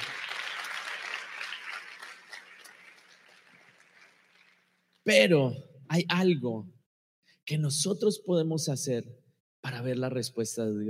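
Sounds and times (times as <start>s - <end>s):
crowd applauding: 0.0s - 4.9s
speech: 5.1s - 6.8s, 7.5s - 10.8s.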